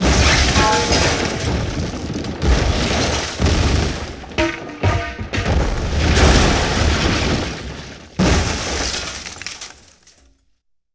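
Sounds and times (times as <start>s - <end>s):
explosion: 0.0s - 9.4s
metal and wood debris scattering: 0.0s - 10.5s.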